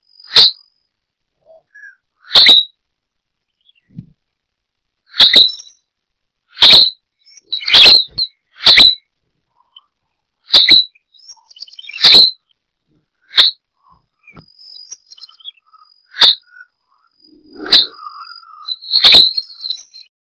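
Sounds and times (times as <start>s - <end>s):
Myiodynastes maculatus streaked flycatcher calling: 1.4s - 2.7s, 5.1s - 5.8s, 6.6s - 12.6s, 13.2s - 19.9s.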